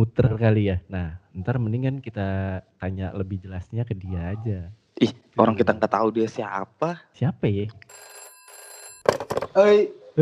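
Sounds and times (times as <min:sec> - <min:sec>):
speech: 0:00.0 - 0:08.1, 0:09.6 - 0:10.1
telephone ringing with electronic tone and buzzy bursts: 0:07.9 - 0:09.3.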